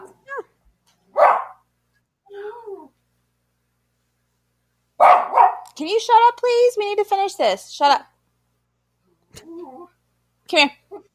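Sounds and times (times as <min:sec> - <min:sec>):
dog barking: 0:01.1 - 0:01.6, 0:05.0 - 0:05.8
dog whiny yelping bark: 0:05.0 - 0:05.7
speech: 0:05.8 - 0:08.1, 0:10.5 - 0:10.8.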